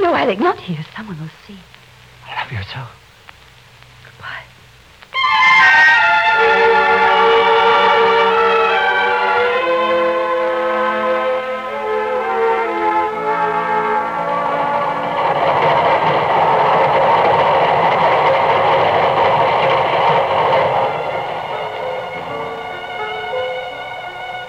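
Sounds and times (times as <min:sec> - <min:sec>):
speech: 0:00.1 - 0:03.0
train carriages rumbling at a railway station: 0:05.1 - 0:24.4
train whistle at a railway station: 0:05.1 - 0:24.4.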